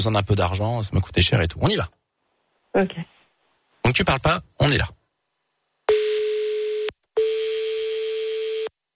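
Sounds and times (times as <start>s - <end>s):
speech: 0.0s - 2.0s, 2.8s - 3.2s, 3.8s - 5.0s
telephone ringback tone: 5.9s - 8.7s.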